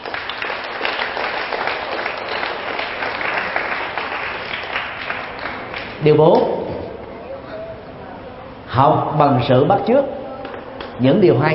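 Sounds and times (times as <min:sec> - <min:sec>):
applause from a large group: 0:00.0 - 0:06.0
speech: 0:06.0 - 0:06.6, 0:08.8 - 0:10.2, 0:11.0 - 0:11.5.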